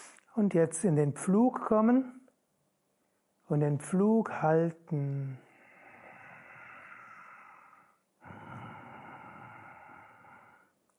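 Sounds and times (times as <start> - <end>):
speech: 0.4 - 2.2, 3.5 - 5.4
deep breathing close to the microphone: 5.3 - 10.8.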